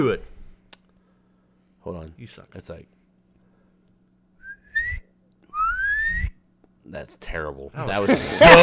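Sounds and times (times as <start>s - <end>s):
speech: 0.0s - 0.3s, 1.8s - 3.0s, 6.9s - 8.6s
breathy air noise: 0.9s - 1.8s
person whistling two rising sliding notes imitating a mother's calling whistle: 4.4s - 6.4s
laughter: 7.8s - 8.6s.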